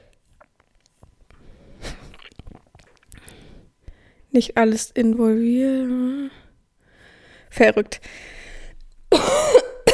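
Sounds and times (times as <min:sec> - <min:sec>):
speech: 0:04.4 - 0:06.4, 0:07.6 - 0:08.3
person coughing and clearing throat: 0:09.1 - 0:09.9.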